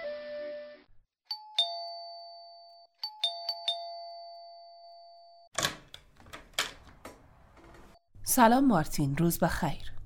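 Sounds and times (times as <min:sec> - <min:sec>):
two-tone electronic doorbell chiming: 0:01.3 - 0:05.5
clicking and rustling of a door being opened: 0:05.5 - 0:08.0
speech: 0:08.3 - 0:09.9.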